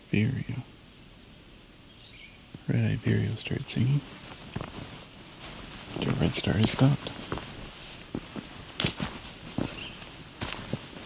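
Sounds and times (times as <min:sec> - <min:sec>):
soft ambient noise: 0:00.0 - 0:11.0
speech: 0:00.1 - 0:00.7, 0:02.7 - 0:04.3, 0:06.0 - 0:07.2
footsteps crunching along an outdoor path: 0:03.5 - 0:11.0.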